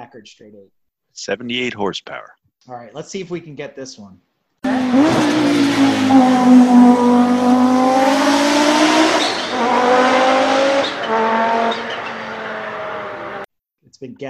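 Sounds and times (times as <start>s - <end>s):
speech: 0.0s - 7.6s, 14.0s - 14.2s
turbo blow-off: 4.6s - 13.4s
loud turbocharged car engine revving through gear shifts: 4.6s - 13.5s
tire chirps between gear shifts: 4.6s - 13.5s.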